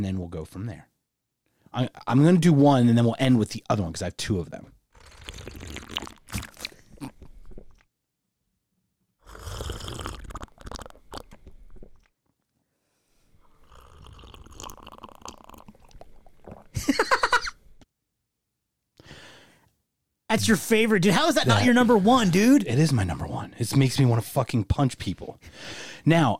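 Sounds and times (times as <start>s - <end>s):
speech: 0.0s - 0.9s, 1.7s - 5.6s, 20.4s - 26.3s
slurping a drink: 5.0s - 7.9s, 9.2s - 12.1s, 13.4s - 16.8s.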